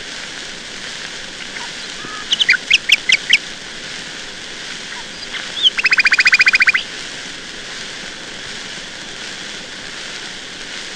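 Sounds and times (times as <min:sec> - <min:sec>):
nightingale song: 0:01.4 - 0:03.4, 0:04.9 - 0:06.9.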